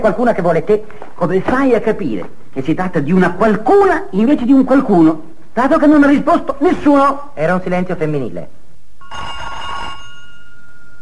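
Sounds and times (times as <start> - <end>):
speech: 0.0 - 9.4
trilling telephone ring: 9.0 - 11.0.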